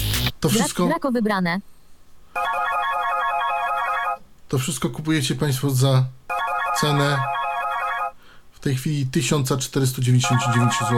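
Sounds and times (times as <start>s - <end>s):
speech: 0.4s - 1.7s, 4.5s - 6.2s, 6.8s - 7.4s, 8.6s - 10.9s
bright electronic mobile phone ringtone: 2.4s - 4.2s, 6.3s - 8.2s, 10.2s - 10.9s.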